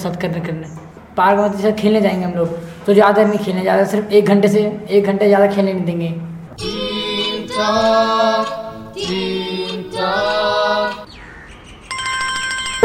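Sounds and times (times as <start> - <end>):
speech: 0.0 - 6.8, 7.6 - 10.4
mobile phone ringtone with chirpy electronic melody: 11.8 - 12.8.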